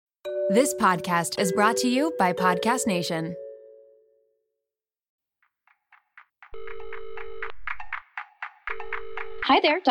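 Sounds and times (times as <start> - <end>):
speech: 0.5 - 3.4, 9.5 - 9.9
telephone ringing with bright electronic tones: 6.6 - 8.0, 8.7 - 9.6.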